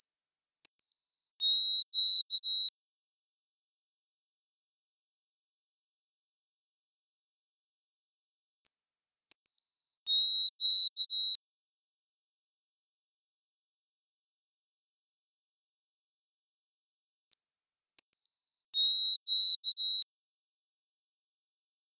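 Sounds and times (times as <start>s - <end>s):
White-throated sparrow singing: 0.0s - 2.7s, 8.7s - 11.4s, 17.3s - 20.0s.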